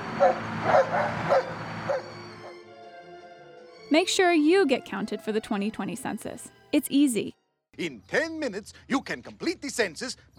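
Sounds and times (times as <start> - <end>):
speech: 0.2 - 1.4, 3.9 - 10.3
bloodhound barking: 0.2 - 2.6.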